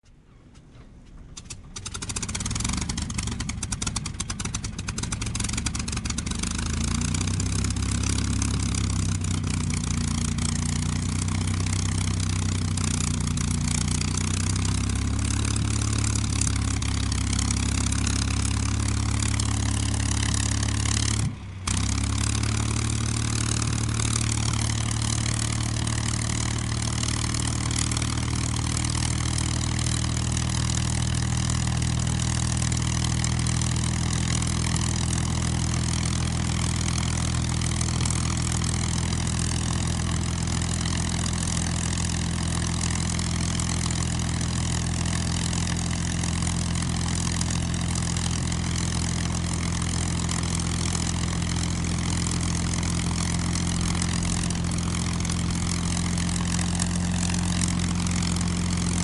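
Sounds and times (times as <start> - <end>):
P-51 propeller plane engine starting: 0.1 - 59.0.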